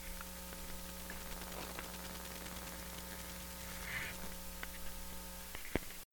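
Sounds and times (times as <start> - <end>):
router: 0.0 - 5.8.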